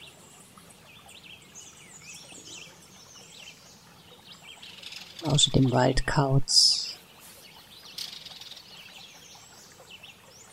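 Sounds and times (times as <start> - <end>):
several birds singing and chirping in a forest: 0.0 - 10.5
speech: 5.2 - 6.9.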